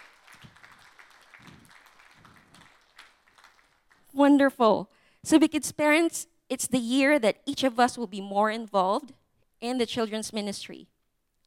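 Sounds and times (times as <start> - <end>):
large group of people applauding: 0.0 - 4.1
speech: 4.2 - 10.9.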